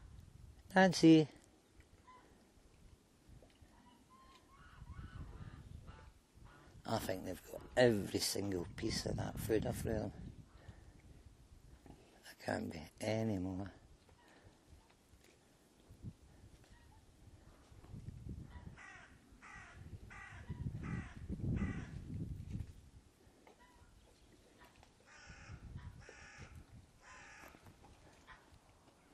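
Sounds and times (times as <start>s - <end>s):
speech: 0.7s - 1.4s, 6.9s - 10.3s, 12.4s - 13.8s
crows cawing: 18.8s - 22.0s, 25.1s - 27.7s.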